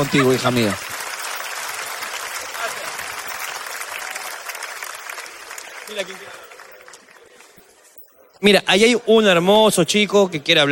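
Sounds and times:
speech: 0:00.0 - 0:00.9, 0:08.4 - 0:10.6
audience applause: 0:00.0 - 0:07.8.

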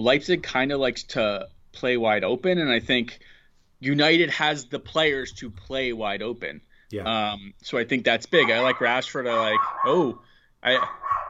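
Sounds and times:
speech: 0:00.0 - 0:11.2
dog barking: 0:08.4 - 0:11.2.

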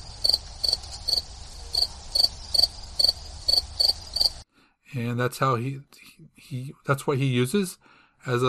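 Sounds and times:
crickets chirping: 0:00.0 - 0:04.4
speech: 0:05.0 - 0:08.4.

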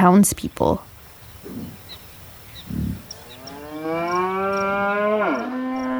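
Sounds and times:
faint birds chirping: 0:00.0 - 0:05.2
cow on a farm grunting: 0:00.5 - 0:04.0
cow on a farm mooing: 0:00.8 - 0:04.6.

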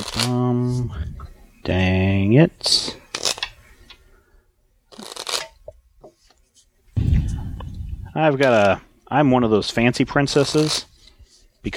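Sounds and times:
deck of cards shuffled during a card game: 0:00.0 - 0:00.4, 0:04.9 - 0:05.6, 0:10.3 - 0:11.2
speech: 0:00.1 - 0:03.0, 0:08.2 - 0:10.9.

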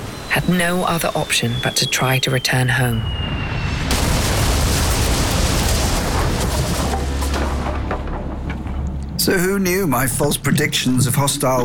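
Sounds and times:
speech: 0:00.4 - 0:03.4, 0:09.2 - 0:11.6
cannon fire and explosions blending into a constant rumble: 0:03.0 - 0:08.8.

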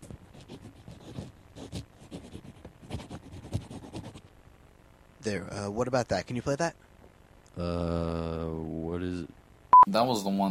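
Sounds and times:
pencil scribbling on paper: 0:00.0 - 0:04.2
speech: 0:05.2 - 0:06.9, 0:07.6 - 0:10.5.

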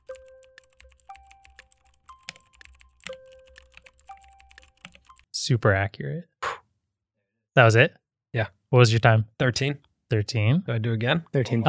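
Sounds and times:
typing on a mechanical keyboard: 0:00.0 - 0:05.3
speech: 0:05.5 - 0:06.3, 0:07.6 - 0:11.6.

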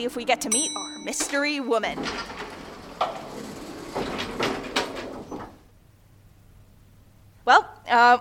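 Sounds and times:
speech: 0:00.0 - 0:03.2, 0:07.5 - 0:08.1
elevator doors sliding open with soft mechanical rumbles and whooshes: 0:00.0 - 0:06.0.

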